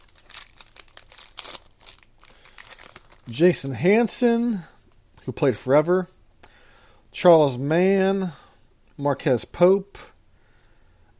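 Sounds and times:
trading-card pack wrapper crinkling and tearing: 0:00.0 - 0:03.5
speech: 0:03.3 - 0:04.7, 0:05.3 - 0:06.1, 0:07.2 - 0:08.4, 0:09.0 - 0:10.0.

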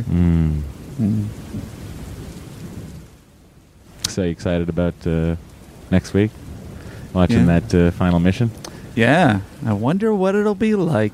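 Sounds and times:
speech: 0:00.0 - 0:01.8, 0:04.2 - 0:06.4, 0:07.1 - 0:11.1
deep rumble: 0:00.0 - 0:03.0, 0:04.4 - 0:09.9
steady rain pouring: 0:00.0 - 0:11.1.

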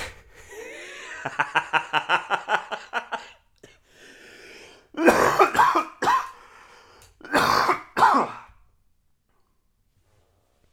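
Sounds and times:
laughter: 0:00.5 - 0:03.4
speech: 0:01.2 - 0:02.1
person coughing: 0:05.0 - 0:06.4, 0:07.2 - 0:08.6.

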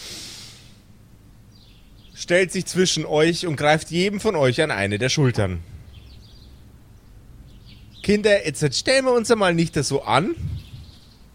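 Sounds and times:
woman taking a deep sharp inhale through the nose: 0:00.0 - 0:00.8
speech: 0:02.2 - 0:05.7, 0:08.1 - 0:10.6.

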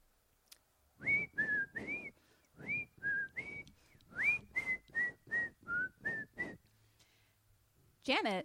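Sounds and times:
old man whistling a tune while walking upstairs: 0:01.0 - 0:06.6.

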